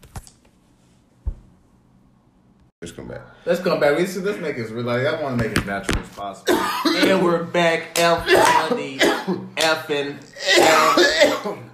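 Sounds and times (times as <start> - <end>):
speech: 2.8 - 11.7
man clearing throat: 6.5 - 7.2, 8.2 - 9.6, 10.3 - 11.7
man coughing: 6.5 - 7.3, 8.1 - 9.6, 10.3 - 11.7.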